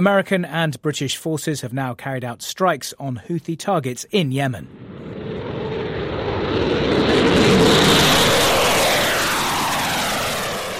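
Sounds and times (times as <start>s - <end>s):
speech: 0.0s - 5.2s, 6.6s - 7.1s
military jets and a tanker aircraft taking off from an airbase in Cyprus: 4.6s - 10.7s.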